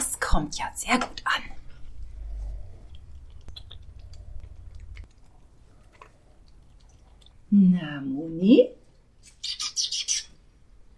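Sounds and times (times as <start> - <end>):
speech: 0.4 - 1.5, 7.8 - 8.8
low rumbling background: 0.4 - 7.6
animal chewing feed: 1.7 - 7.5.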